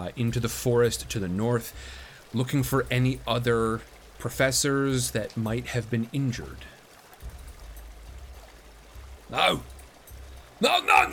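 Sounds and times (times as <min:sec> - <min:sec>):
speech: 0:00.0 - 0:06.8, 0:09.3 - 0:09.7, 0:10.6 - 0:11.1
river water flowing: 0:00.0 - 0:11.1.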